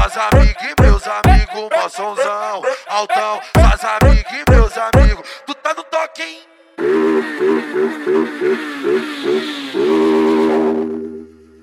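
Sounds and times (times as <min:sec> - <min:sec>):
speech: 0:00.2 - 0:10.3
motorcycle engine revving: 0:06.8 - 0:11.6.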